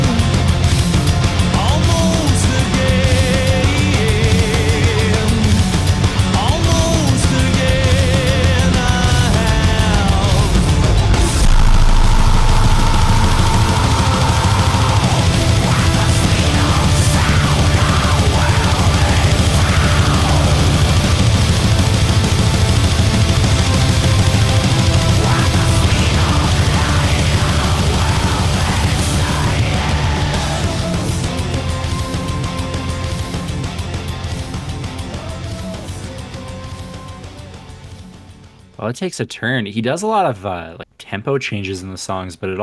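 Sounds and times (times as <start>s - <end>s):
heavy distorted guitars: 0.0s - 36.3s
melodic sung vocal line: 1.5s - 21.9s, 24.4s - 33.1s, 38.7s - 42.6s
pounding drums: 2.8s - 31.6s
harsh strained screamed vocals: 6.3s - 22.0s, 23.9s - 31.8s
speech: 38.9s - 42.6s.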